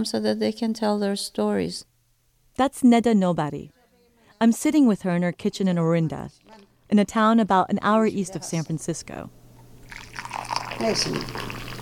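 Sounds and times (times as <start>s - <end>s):
speech: 0.0s - 1.9s, 2.6s - 3.8s, 4.4s - 9.4s, 10.2s - 11.6s
low steady hum: 0.0s - 11.7s
tea pouring into a cup: 9.8s - 11.7s.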